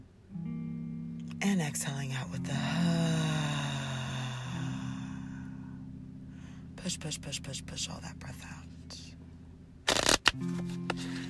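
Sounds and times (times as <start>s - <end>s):
soft steady low tone: 0.0s - 9.8s
speech: 1.4s - 3.4s, 6.8s - 9.0s, 10.4s - 10.8s
oracle card deck being shuffled: 9.9s - 11.2s.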